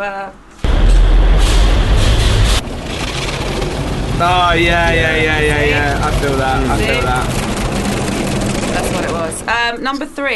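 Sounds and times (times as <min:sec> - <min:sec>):
speech: 0:00.0 - 0:00.5, 0:04.2 - 0:07.4, 0:08.8 - 0:10.3
car engine rumbling low and steady at a car wash: 0:00.6 - 0:09.8
broad hiss of spraying water at a car wash: 0:01.4 - 0:09.5.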